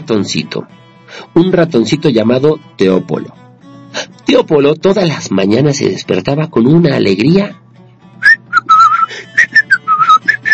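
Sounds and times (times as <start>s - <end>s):
speech: 0.1s - 7.6s
cheerful human whistling: 8.2s - 10.5s.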